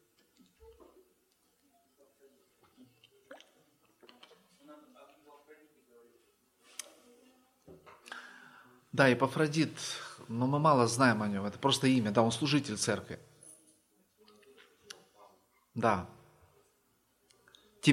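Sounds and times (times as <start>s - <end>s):
person drinking water: 2.5s - 5.2s
speech: 9.0s - 13.3s, 15.8s - 16.2s.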